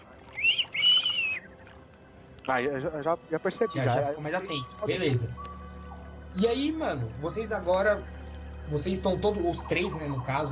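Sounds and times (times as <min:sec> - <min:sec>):
person whistling a two-note attention signal: 0:00.4 - 0:01.5
speech: 0:02.4 - 0:05.5, 0:06.4 - 0:08.1, 0:08.7 - 0:10.5.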